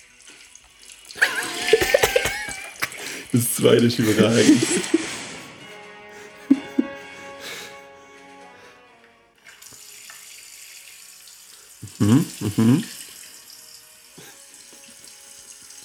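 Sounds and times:
water spraying from a tap in sprinkler-like jets: 0.0 - 5.1, 9.4 - 15.8
laughter: 1.2 - 8.4
speech: 3.3 - 5.1, 12.0 - 13.0.

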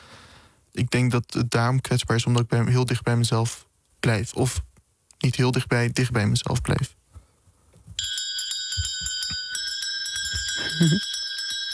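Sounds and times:
speech: 0.9 - 7.0, 10.8 - 11.1
small bell ringing: 8.0 - 11.7
soft voices: 10.6 - 11.0.

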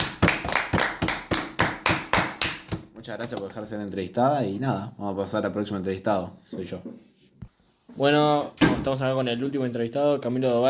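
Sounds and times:
applause for an interviewee in hand claps: 0.0 - 3.4
speech: 3.1 - 7.1, 8.0 - 10.6.

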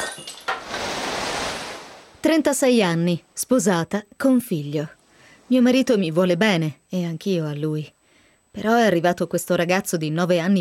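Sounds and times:
glass bottle clink: 0.0 - 0.6
steady broadband rushing noise: 0.6 - 2.5
speech: 2.2 - 10.6.

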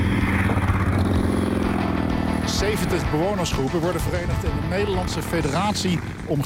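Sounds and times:
motorcycle engine rumbling: 0.0 - 6.4
speech: 2.6 - 6.4.

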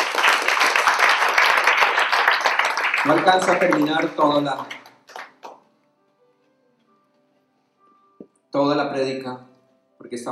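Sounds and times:
church congregation clapping during a sermon: 0.0 - 5.7
speech: 3.0 - 4.8, 8.6 - 10.3.

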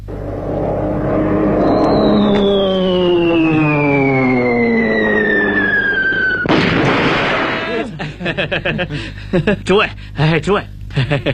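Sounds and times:
performer's voice imitating a wartime warplane dropping a bomb: 0.8 - 7.9
laughter: 7.6 - 9.7, 11.0 - 11.3
speech: 8.4 - 11.3.

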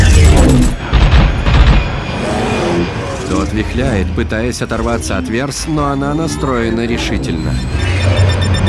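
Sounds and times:
fighter plane gunfire and booms in a film action scene: 0.0 - 2.2
speech: 3.6 - 8.5.

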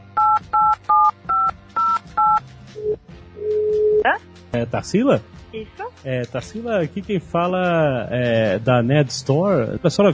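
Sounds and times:
keypad tones dialing a phone call through internet calling software: 0.2 - 4.0
speech: 4.6 - 10.1.

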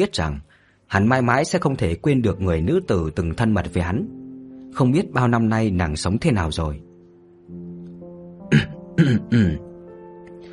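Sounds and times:
speech: 0.0 - 6.9, 8.6 - 9.7
person clearing throat: 8.5 - 9.7.

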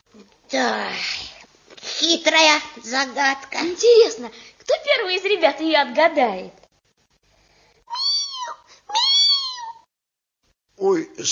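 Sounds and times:
speech: 0.5 - 1.2, 2.0 - 6.6, 10.8 - 11.2
kitten meowing: 7.9 - 9.9.

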